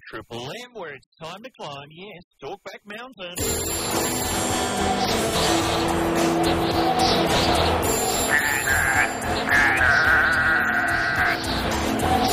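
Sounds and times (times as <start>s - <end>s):
speech: 0.1s - 10.7s
goats bleating: 8.2s - 12.2s.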